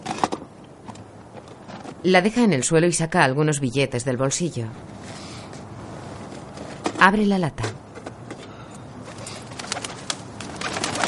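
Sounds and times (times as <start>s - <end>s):
speech: 2.0s - 5.2s, 7.0s - 7.7s
pigeons cooing at a building construction site: 9.0s - 11.0s.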